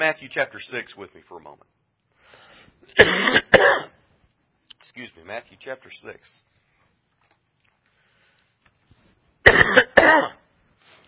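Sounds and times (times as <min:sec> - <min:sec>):
speech: 0:00.0 - 0:01.8, 0:02.8 - 0:04.0, 0:04.8 - 0:06.5, 0:09.7 - 0:10.4
harsh raspy coughs: 0:02.9 - 0:04.0, 0:09.4 - 0:10.5.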